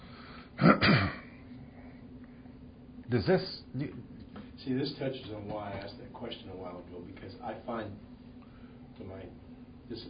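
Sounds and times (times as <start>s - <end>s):
person coughing after something went down the wrong way: 0.6s - 1.4s
throat clearing: 0.6s - 1.4s
speech: 3.1s - 8.1s, 9.0s - 10.0s.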